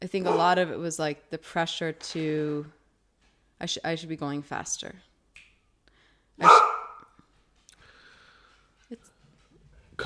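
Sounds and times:
speech: 0.0s - 2.8s, 3.6s - 5.1s, 6.4s - 6.7s
single loud sharp dog bark: 0.2s - 0.6s, 6.4s - 7.1s.

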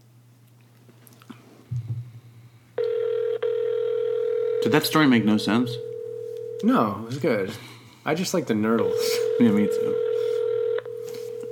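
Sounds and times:
phone ringing for an incoming call: 2.8s - 7.0s, 8.8s - 11.5s
speech: 4.6s - 5.9s, 6.6s - 10.1s.

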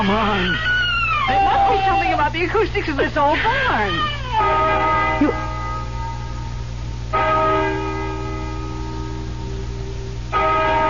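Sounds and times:
speech: 0.0s - 5.5s
deep bell tolling: 4.4s - 10.8s.

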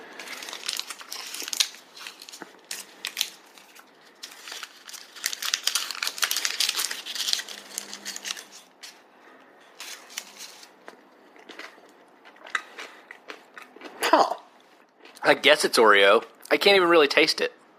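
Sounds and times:
plastic packaging of a crunchy cookie snack crinkling as it is opened: 0.0s - 9.0s, 9.8s - 10.9s
chewing a crunchy cookie peanut butter candy with chopped cookie pieces: 0.1s - 9.0s, 9.8s - 15.3s
speech: 15.3s - 17.6s.

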